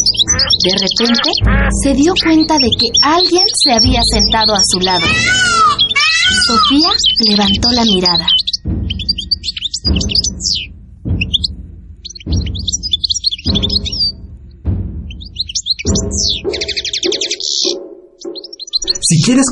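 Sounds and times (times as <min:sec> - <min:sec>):
birds chirping in a park: 0:00.0 - 0:19.5
speech: 0:00.2 - 0:05.6, 0:06.4 - 0:08.8, 0:09.8 - 0:11.4, 0:19.2 - 0:19.5.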